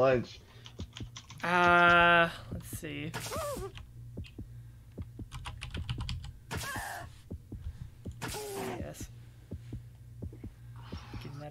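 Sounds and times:
speech: 0:00.0 - 0:03.9, 0:08.3 - 0:09.1
rapid typing on a device keyboard: 0:00.6 - 0:02.8, 0:05.3 - 0:06.3.

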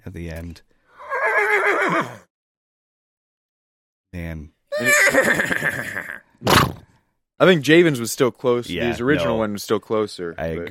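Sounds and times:
speech: 0:00.0 - 0:00.7, 0:01.8 - 0:02.3, 0:04.1 - 0:06.8, 0:07.4 - 0:10.6
horse whinnying with a quavering shrill neigh: 0:01.0 - 0:02.3, 0:04.7 - 0:06.2.

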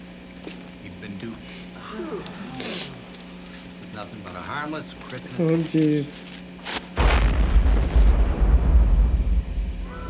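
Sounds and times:
speech: 0:04.0 - 0:06.3
bomb explosion in a film scene: 0:07.0 - 0:09.9.

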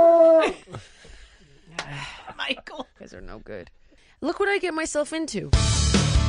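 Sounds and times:
small dog howling: 0:00.0 - 0:00.6
speech: 0:03.1 - 0:06.1.

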